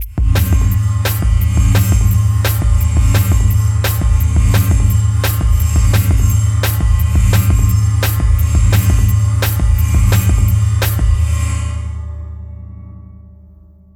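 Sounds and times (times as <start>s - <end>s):
gong beat with trip modulation: 0.0s - 11.2s.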